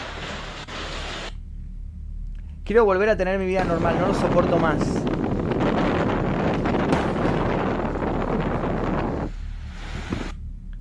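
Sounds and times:
rain outside: 0.0 - 1.4
wind outside: 0.0 - 10.7
speech: 2.7 - 5.2.

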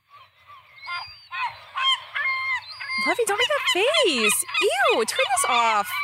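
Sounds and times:
seagulls squawking: 0.0 - 6.0
speech: 3.0 - 6.0.

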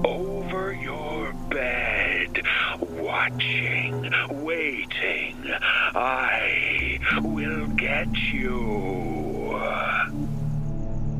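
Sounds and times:
crickets chirping at night: 0.3 - 11.1.

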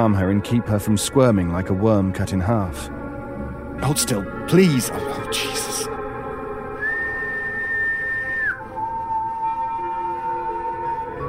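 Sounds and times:
speech: 0.0 - 3.0, 3.8 - 5.9
two-tone whistling with second pitch an octave lower: 6.8 - 11.2.

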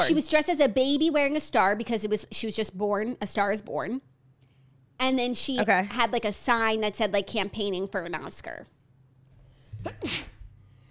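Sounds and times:
person sneezing: 0.0 - 0.2, 9.7 - 10.5
speech: 0.0 - 4.1, 5.0 - 8.8, 9.8 - 10.3.

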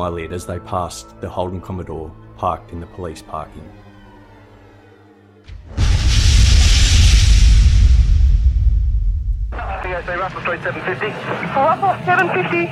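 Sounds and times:
speech: 0.0 - 3.8, 9.9 - 12.7
car bomb explosion: 5.5 - 9.6.

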